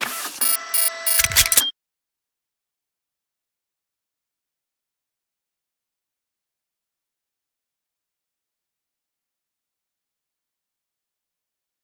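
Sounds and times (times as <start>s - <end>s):
scanner: 0.1s - 1.7s.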